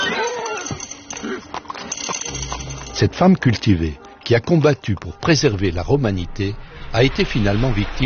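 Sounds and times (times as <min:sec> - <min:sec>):
horse neighing: 0:00.0 - 0:01.7
speech: 0:03.0 - 0:08.0.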